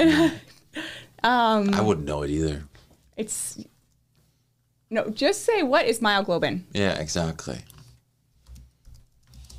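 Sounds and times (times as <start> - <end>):
speech: 0.0 - 0.4, 1.2 - 3.7, 4.9 - 7.8
computer keyboard typing: 7.5 - 9.5.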